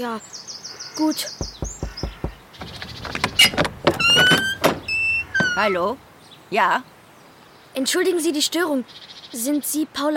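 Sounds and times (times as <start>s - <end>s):
speech: 0.0s - 1.6s, 5.6s - 6.9s, 7.8s - 10.1s
sharp knocks on the door of a house: 1.4s - 5.6s.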